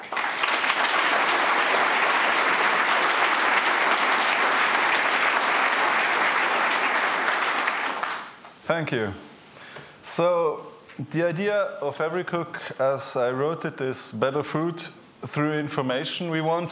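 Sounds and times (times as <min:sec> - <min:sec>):
large audience applauding: 0:00.0 - 0:08.4
speech: 0:08.7 - 0:09.3, 0:10.1 - 0:16.7.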